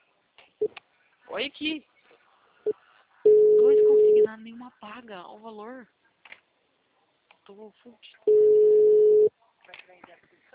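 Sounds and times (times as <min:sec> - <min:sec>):
speech: 0:00.6 - 0:00.8, 0:01.4 - 0:01.9, 0:02.6 - 0:02.8, 0:04.3 - 0:06.0, 0:07.5 - 0:08.5
telephone ringback tone while calling someone: 0:08.3 - 0:09.3.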